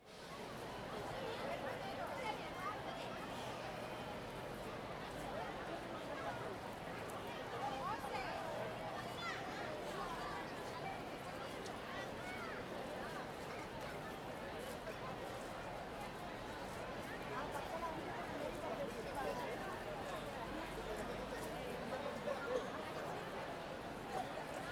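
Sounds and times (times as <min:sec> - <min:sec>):
dense crowd chattering in a big commercial pedestrian street: 0:00.3 - 0:24.6.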